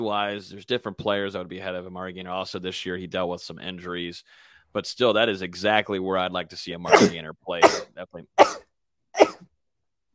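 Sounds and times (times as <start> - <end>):
speech: 0.0 - 8.6
person sneezing: 6.9 - 8.6, 9.2 - 9.4.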